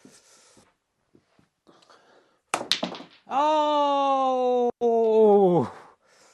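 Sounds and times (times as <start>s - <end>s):
snooker balls colliding: 2.6s - 3.3s
speech: 3.3s - 4.0s
loud drawn-out vocal exclamation: 3.3s - 5.8s.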